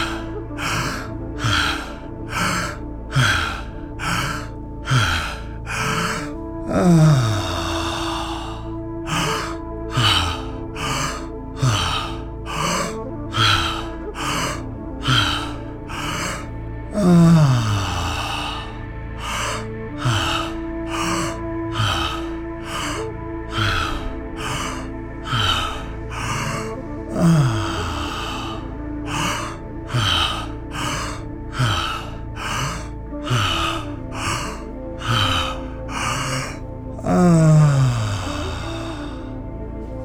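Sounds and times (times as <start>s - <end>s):
rapid open-mouthed breathing during a guided breathing exercise: 0.0s - 40.0s
soft sustained musical drone: 0.0s - 40.0s.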